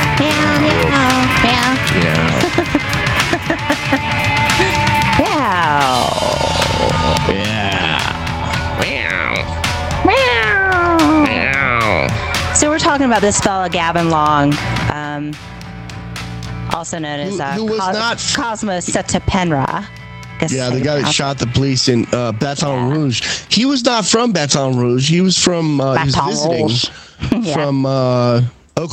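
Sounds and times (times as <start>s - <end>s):
several cats meowing: 0.2s - 12.2s
laughter: 0.3s - 9.5s, 17.1s - 19.3s, 20.5s - 24.3s, 25.8s - 28.0s
speech: 13.0s - 15.6s, 16.8s - 28.9s.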